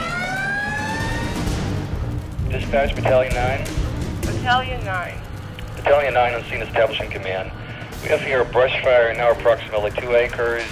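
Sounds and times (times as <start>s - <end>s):
fire engine wailing emergency siren: 0.0s - 8.4s
fire engine heavy engine rumble: 0.0s - 10.7s
speech: 2.7s - 3.8s, 4.4s - 10.7s.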